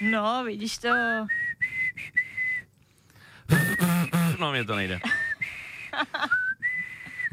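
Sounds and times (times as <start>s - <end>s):
speech: 0.0s - 1.4s, 4.4s - 5.2s
person whistling a melody: 1.2s - 2.7s, 3.5s - 4.4s, 5.0s - 7.3s.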